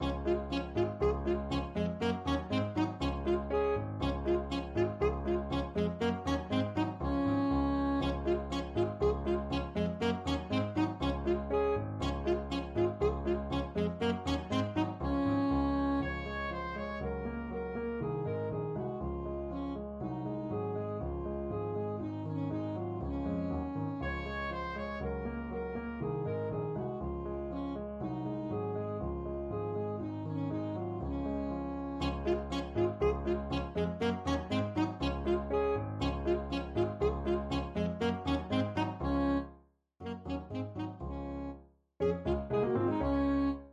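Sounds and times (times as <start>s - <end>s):
ecossaise played on alto saxophone: 0.0s - 26.5s, 27.5s - 43.7s.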